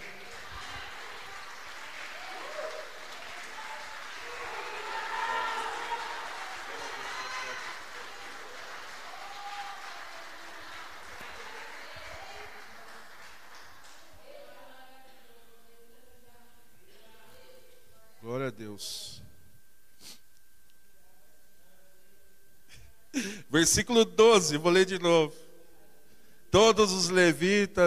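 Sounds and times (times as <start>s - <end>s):
audience applauding: 0.0s - 14.4s
scattered voices and cheers in the crowd: 0.0s - 14.4s
speech: 18.8s - 19.2s, 23.2s - 25.4s, 26.6s - 27.8s.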